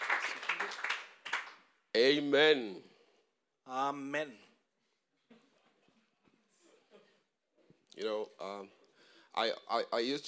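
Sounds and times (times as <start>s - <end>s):
crowd clapping in applause: 0.0s - 1.7s
speech: 2.0s - 2.9s, 3.7s - 4.5s, 8.0s - 8.8s, 9.4s - 10.2s.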